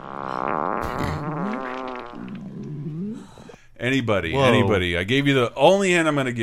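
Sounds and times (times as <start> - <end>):
woman farting, long loud buzzy fart: 0.0 - 3.2
speech: 3.8 - 6.4.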